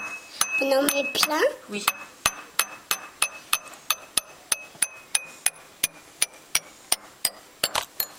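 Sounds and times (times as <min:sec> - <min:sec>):
drinking glasses holding different amounts of water being tapped: 0:00.0 - 0:05.6
speech: 0:00.6 - 0:02.2.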